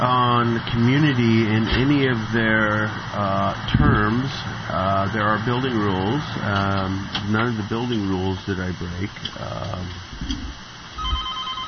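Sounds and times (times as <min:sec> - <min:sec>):
speech: 0:00.0 - 0:10.6
telephone ringing with an incoming caller on a call-in line: 0:11.0 - 0:11.6.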